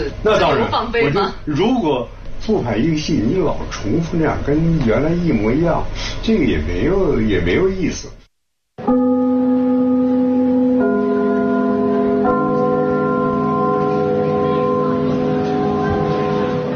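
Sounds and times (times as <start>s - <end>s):
speech: 0.0s - 8.2s
theatre curtain-opening bell: 8.8s - 16.7s.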